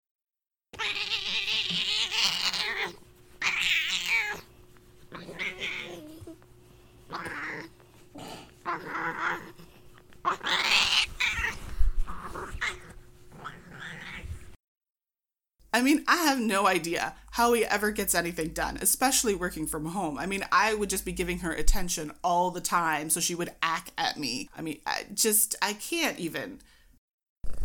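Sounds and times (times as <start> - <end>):
female cat yowling and caterwauling: 0.8 - 4.5, 5.1 - 6.4, 7.1 - 7.7, 8.6 - 14.4
speech: 15.8 - 26.8.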